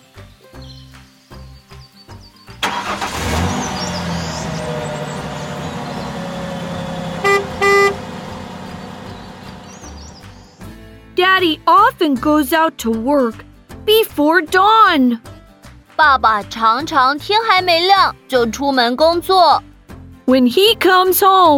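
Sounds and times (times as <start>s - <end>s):
delivery truck engine rumble: 2.6s - 10.7s
delivery truck horn honks: 3.2s - 9.5s
speech: 11.4s - 15.3s, 16.0s - 19.7s, 20.3s - 21.5s.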